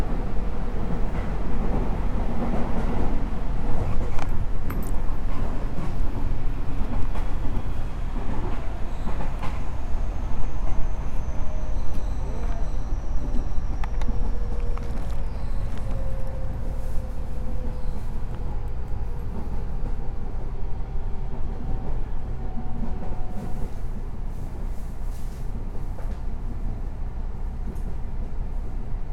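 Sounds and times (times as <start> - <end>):
electric commuter train rumbling, recorded from inside: 0.0 - 29.1
faint high whistle: 10.1 - 14.5, 15.1 - 17.1.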